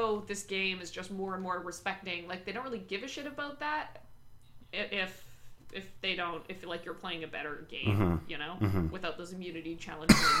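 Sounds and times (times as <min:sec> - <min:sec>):
speech: 0:00.0 - 0:04.1, 0:04.7 - 0:10.3
person coughing: 0:07.9 - 0:08.9, 0:10.1 - 0:10.3.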